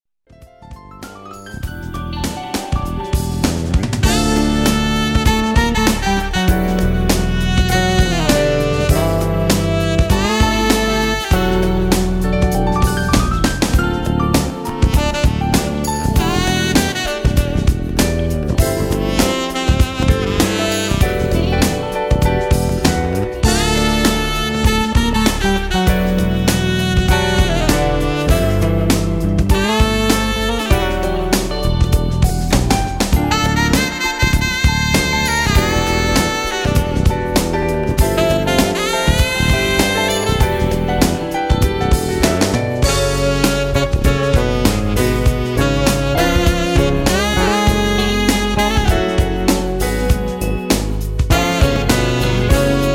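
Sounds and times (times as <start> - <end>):
tenor saxophone sample: 1.5 - 52.9.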